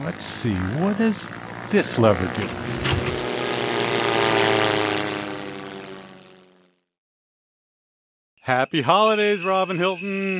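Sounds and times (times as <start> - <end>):
propeller airplane engine droning while landing: 0.0 - 6.9
speech: 0.1 - 3.1, 8.5 - 10.3.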